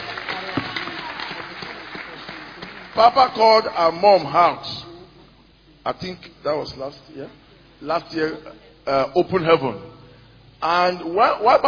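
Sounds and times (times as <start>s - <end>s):
crowd clapping at a religious gathering: 0.0s - 4.4s
speech: 3.0s - 4.8s, 5.8s - 10.0s, 10.6s - 11.6s.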